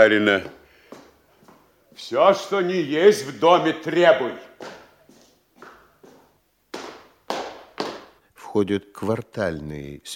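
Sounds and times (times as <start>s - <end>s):
speech: 0.0s - 0.6s, 2.0s - 4.8s, 8.5s - 10.1s
boots stomping on a floor: 4.6s - 8.2s.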